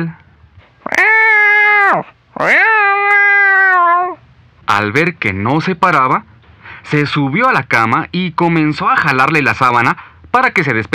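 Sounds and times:
speech: 0.0 - 0.2, 1.9 - 2.7, 4.7 - 10.9
hungry cat meowing: 0.8 - 4.2.

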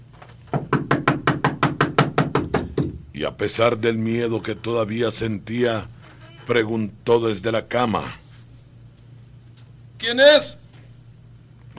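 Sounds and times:
loud rapid knocking on a door: 0.5 - 3.1
speech: 3.2 - 8.2, 10.0 - 10.6.

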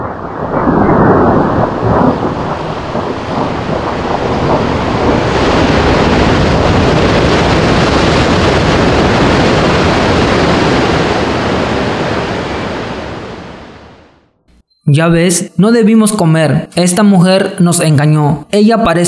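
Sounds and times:
rushing river water flowing toward the sea: 0.9 - 13.7
speech: 15.0 - 19.0.

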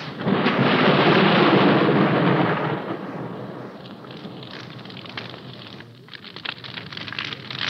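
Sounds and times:
crackles during rain: 0.0 - 7.6
deep roll of thunder: 0.0 - 7.6
steady rain pouring down at night: 0.0 - 7.6.

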